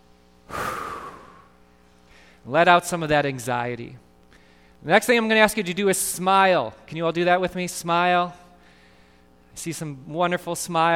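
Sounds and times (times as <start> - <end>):
people taking a deep breath together: 0.5 - 2.4, 4.3 - 4.8, 8.6 - 9.3
speech: 2.4 - 4.0, 4.8 - 8.4, 9.6 - 10.9.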